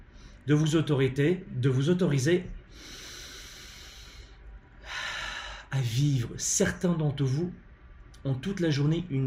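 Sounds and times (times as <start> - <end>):
speech: 0.5 - 3.0, 5.7 - 9.2
slow deliberate breath: 2.7 - 5.7.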